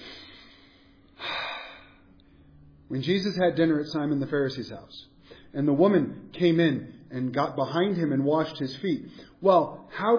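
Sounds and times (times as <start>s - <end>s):
person taking a quick breath: 0.0s - 2.6s
hiss: 0.0s - 10.1s
speech: 2.9s - 10.1s.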